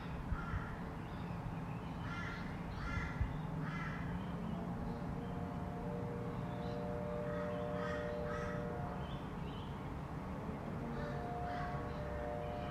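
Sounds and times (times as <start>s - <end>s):
low rumble of nearby traffic on a residential street: 0.0s - 12.7s
crows cawing: 2.0s - 4.2s, 7.2s - 8.9s, 10.9s - 12.2s
faint humming tones: 2.6s - 12.7s.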